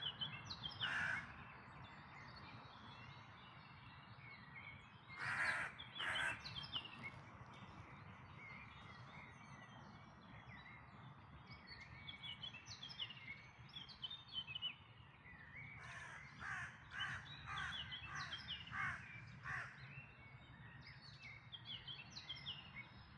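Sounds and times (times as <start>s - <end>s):
high bird twittering and whistled song in a dawn chorus: 0.0s - 5.2s, 5.8s - 23.1s
harsh bird caws in a dawn chorus: 0.8s - 1.3s, 5.2s - 6.4s, 15.8s - 19.8s.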